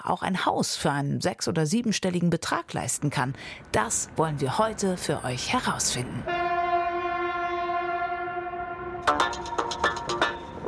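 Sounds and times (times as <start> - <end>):
speech: 0.1 - 6.4
Deutsche Bahn Sylt Shuttle train horn tone: 6.2 - 9.2
Deutsche Bahn Sylt Shuttle train wheels clacking on the rails: 9.1 - 10.6.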